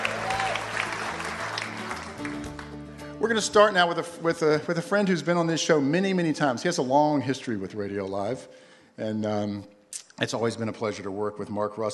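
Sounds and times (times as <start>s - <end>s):
live studio audience applause at a comedy and variety show: 0.0s - 2.9s
speech: 3.2s - 11.9s.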